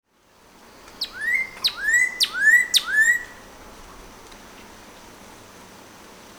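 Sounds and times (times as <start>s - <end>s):
Northern cardinal singing clear whistled notes: 1.0s - 3.4s.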